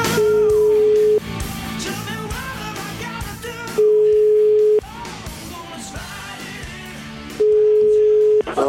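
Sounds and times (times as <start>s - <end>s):
telephone ringback tone while placing a call: 0.1s - 1.2s, 3.7s - 4.8s, 7.4s - 8.5s.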